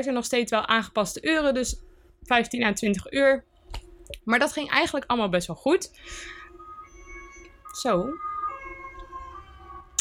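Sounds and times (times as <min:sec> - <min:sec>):
speech: 0:00.0 - 0:03.5, 0:04.2 - 0:06.4, 0:07.7 - 0:08.3
ambulance siren wailing outside: 0:06.0 - 0:09.9.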